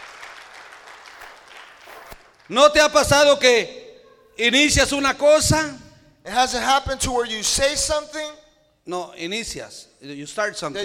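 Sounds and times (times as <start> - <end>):
roomful of people applauding: 0.0 - 2.5
speech: 2.5 - 3.8, 4.4 - 10.8.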